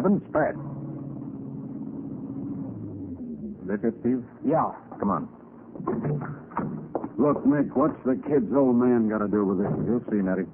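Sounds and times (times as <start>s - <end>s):
speech: 0.0s - 0.8s, 3.7s - 10.5s
car engine droning inside a car driving to a hardware store: 0.0s - 4.4s.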